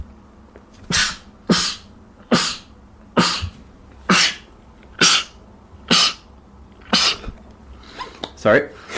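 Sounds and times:
person sneezing: 0.8 - 7.4
speech: 8.5 - 8.8.

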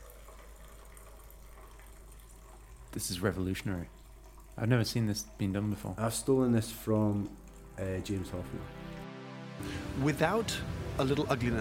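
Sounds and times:
coffee pouring from a French press into a cup: 0.0 - 8.7
speech: 2.9 - 4.0, 4.6 - 8.9, 9.6 - 11.5.

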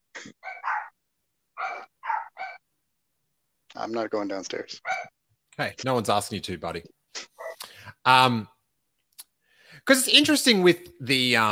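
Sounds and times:
puppies barking in short high yaps: 0.4 - 1.0, 1.6 - 2.6, 4.9 - 5.1
speech: 3.8 - 7.0, 8.0 - 8.5, 9.8 - 11.5.

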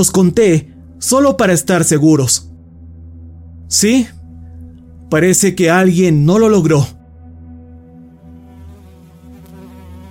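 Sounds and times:
speech: 0.0 - 2.6, 3.7 - 4.2, 5.1 - 7.0
fly buzzing while trying to get into a nose: 7.3 - 10.0.

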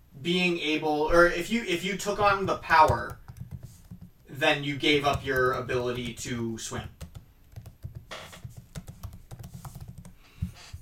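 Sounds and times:
speech: 0.2 - 3.2, 4.4 - 7.0
typing on a computer keyboard: 2.2 - 4.3, 4.9 - 10.8.

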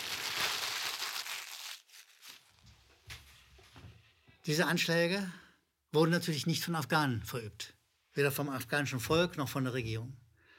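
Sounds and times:
sheet of paper being crumpled: 0.0 - 2.8
speech: 4.5 - 10.2.

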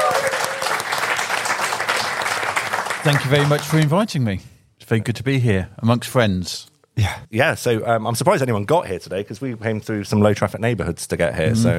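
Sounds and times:
audience applause at a local council talk: 0.0 - 4.0
speech: 3.0 - 11.7.

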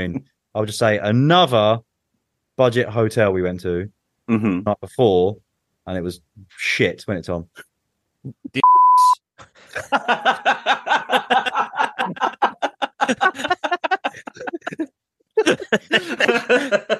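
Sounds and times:
speech: 0.0 - 1.9, 2.6 - 8.6, 9.8 - 10.4, 15.7 - 16.8
loud steady censor bleep over a swear word: 8.6 - 9.2
rhythmic bursts of laughter: 9.4 - 16.9.

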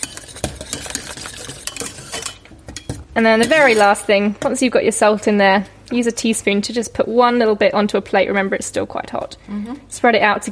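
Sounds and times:
whisk clicking and scraping against a pot whisking salt flakes into a hot mixture: 0.0 - 4.1
speech: 3.2 - 10.5.

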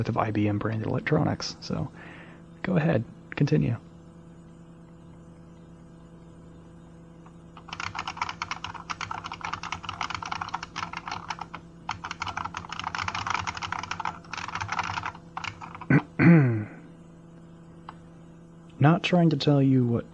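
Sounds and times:
speech: 0.0 - 3.9, 19.0 - 20.1
typing on a computer keyboard: 7.6 - 15.9.

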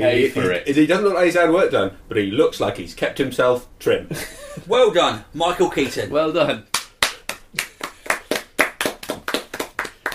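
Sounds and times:
speech: 0.0 - 6.7
brisk hand clapping: 6.7 - 10.1.

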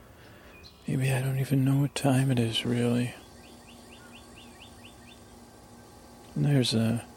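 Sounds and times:
constant low mechanical hum: 0.0 - 7.1
bird chirping outdoors: 0.2 - 1.1, 3.0 - 6.0
speech: 0.9 - 3.2, 6.4 - 7.1.

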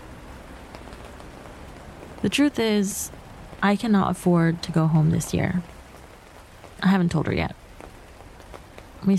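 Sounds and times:
rain pattering on a hard surface on a street in Paris: 0.0 - 9.1
speech: 2.2 - 5.8, 6.8 - 7.6.

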